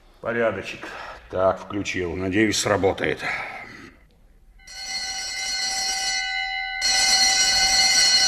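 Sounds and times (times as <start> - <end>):
speech: 0.2 - 3.7
electric alarm bell ringing: 4.6 - 8.2.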